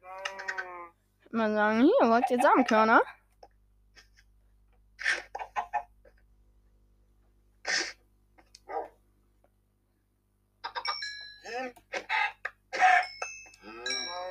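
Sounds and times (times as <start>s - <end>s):
speech: 1.3s - 3.2s
chicken sounds in a farm video game: 5.0s - 5.9s.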